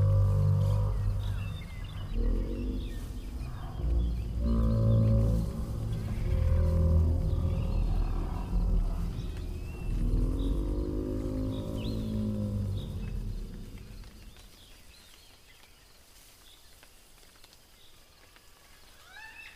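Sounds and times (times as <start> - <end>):
large animal giving deep moaning roars: 0.0 - 14.4
faint birds in a jungle: 0.0 - 19.5
insects in a jungle: 0.0 - 19.5.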